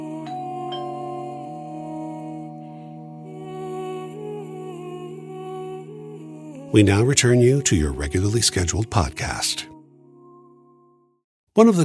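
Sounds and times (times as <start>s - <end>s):
doorbell chime: 0.3s - 3.6s, 6.8s - 8.4s
speech: 6.7s - 9.7s, 11.6s - 11.8s.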